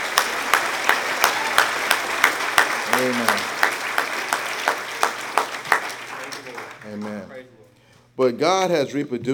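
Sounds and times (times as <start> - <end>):
crowd clapping in a steady rhythmic beat: 0.0 - 7.5
speech: 3.0 - 3.5, 8.2 - 9.3.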